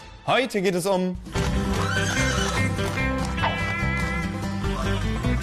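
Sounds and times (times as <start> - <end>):
speech: 0.3 - 1.3
horse hooves clip-clopping: 1.4 - 5.4
horse neighing: 1.6 - 4.0.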